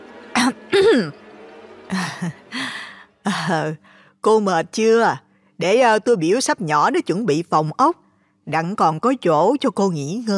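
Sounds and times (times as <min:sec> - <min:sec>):
speech: 0:00.4 - 0:01.2, 0:01.9 - 0:02.5, 0:03.2 - 0:10.3
woman clearing her throat loudly to interrupt: 0:00.7 - 0:01.1.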